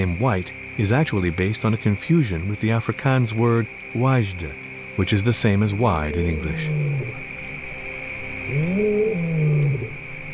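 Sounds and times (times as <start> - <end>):
speech: 0.0 - 7.3, 8.5 - 9.4
steady high-pitched insect drone: 0.0 - 10.3
lion roaring in the distance: 6.0 - 7.2, 8.5 - 10.0.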